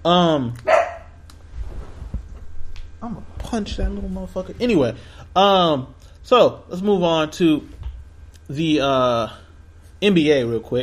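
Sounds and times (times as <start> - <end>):
speech: 0.0 - 0.8, 3.0 - 7.8, 8.5 - 9.4, 10.0 - 10.8
dog barking: 0.7 - 1.2.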